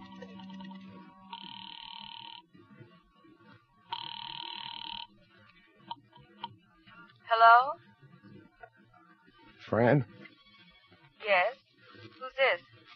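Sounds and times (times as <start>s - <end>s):
telephone ringing through an earpiece in a phone booth: 0.0s - 2.5s, 3.9s - 5.2s
speech: 7.4s - 7.8s, 9.7s - 10.1s.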